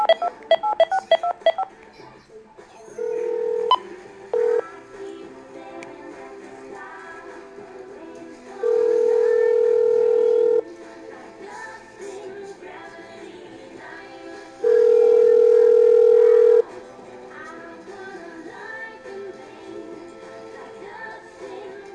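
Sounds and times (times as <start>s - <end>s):
steady electronic tones from the phone line: 0.0s - 1.7s, 3.0s - 4.6s, 8.6s - 10.6s, 14.6s - 16.6s
telephone keypad tones while dialing a phone number: 0.0s - 1.7s, 8.7s - 10.6s, 14.6s - 16.6s.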